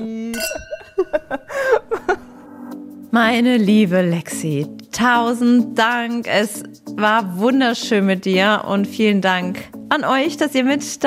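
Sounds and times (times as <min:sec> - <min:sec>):
glasses clinking together in a toast: 0:00.3 - 0:01.5
speech: 0:03.2 - 0:11.0.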